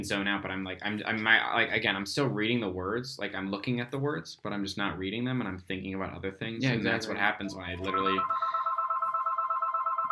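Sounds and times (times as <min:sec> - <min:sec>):
speech: 0:00.0 - 0:08.6
home telephone ringing with electronic trill: 0:07.4 - 0:10.1.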